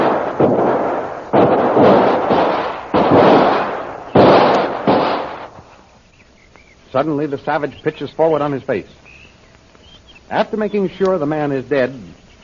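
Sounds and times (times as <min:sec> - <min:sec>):
gunshots exchanged in a shootout: 0:00.0 - 0:05.7
speech: 0:07.0 - 0:09.1, 0:10.3 - 0:12.2.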